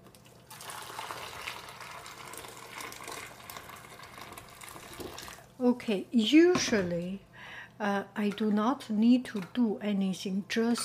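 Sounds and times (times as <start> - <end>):
boiling water pouring into a container: 0.2 - 5.5
speech: 5.6 - 10.8.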